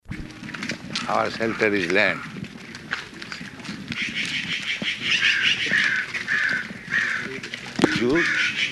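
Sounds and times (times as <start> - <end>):
speech: 1.1 - 2.3, 8.0 - 8.5
crow cawing: 1.4 - 2.4, 4.0 - 8.7.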